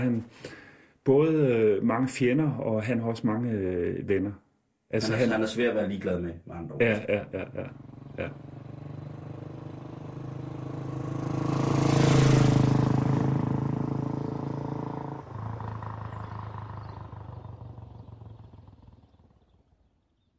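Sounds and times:
speech: 0.0s - 8.6s
laughter: 6.8s - 8.4s
motorcycle engine rumbling and roaring: 7.3s - 19.9s.

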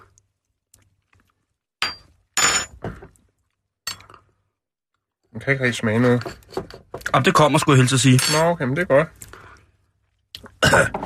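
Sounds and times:
glasses clinking together in a toast: 1.8s - 2.8s, 3.9s - 4.2s, 8.1s - 8.5s
speech: 5.4s - 9.2s, 10.8s - 11.0s.

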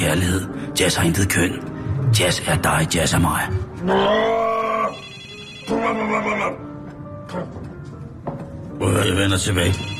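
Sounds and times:
speech: 0.0s - 4.5s, 8.8s - 9.9s
telephone ringing in warbling bursts: 4.9s - 6.2s, 9.6s - 9.9s.

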